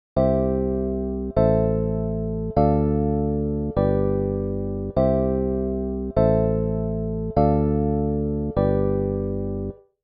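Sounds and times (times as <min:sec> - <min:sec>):
chords with inversions and bass line exercises: 0:00.2 - 0:09.8.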